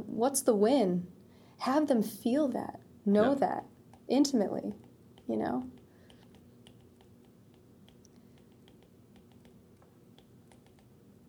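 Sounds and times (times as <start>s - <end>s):
low hum: 0.0s - 11.2s
speech: 0.2s - 5.8s
typing notes on a computer keyboard: 4.7s - 11.0s.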